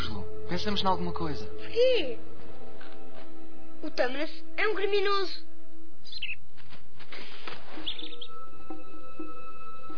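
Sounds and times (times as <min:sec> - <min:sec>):
speech: 0:00.5 - 0:02.3, 0:03.8 - 0:05.5
bird chirping: 0:06.0 - 0:06.5, 0:07.2 - 0:09.9
soft rustling: 0:06.5 - 0:08.1.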